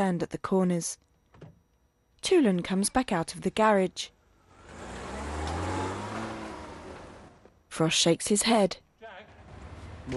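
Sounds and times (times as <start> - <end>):
speech: 0.0 - 1.1, 2.2 - 4.2, 7.7 - 8.8
car engine revving and driving off: 4.4 - 7.5.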